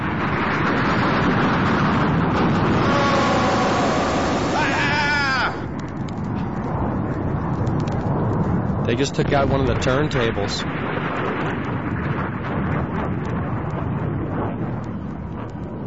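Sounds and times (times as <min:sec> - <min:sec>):
steady rushing background of wind or water: 0:00.0 - 0:15.8
approaching water buffalo bellowing: 0:02.7 - 0:05.6
speech: 0:08.9 - 0:10.8.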